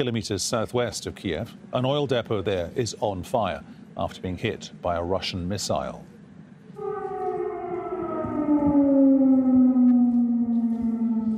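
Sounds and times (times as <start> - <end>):
speech: 0.0 - 6.1
air raid siren wailing in Kiev Ukraine: 6.7 - 11.3.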